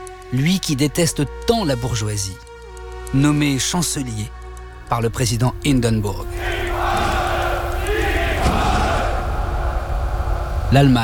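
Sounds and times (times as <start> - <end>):
speech: 0.3 - 2.5, 3.1 - 6.7, 10.7 - 11.0
large marching crowd cheering and shouting in Germany: 6.4 - 10.6.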